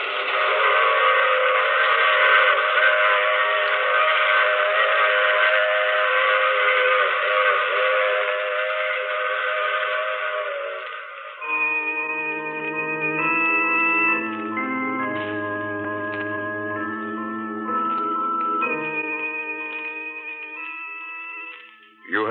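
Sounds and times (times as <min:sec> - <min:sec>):
train rumbling past: 0:00.0 - 0:11.4
train whistle sounding a long sustained chord: 0:00.0 - 0:21.6.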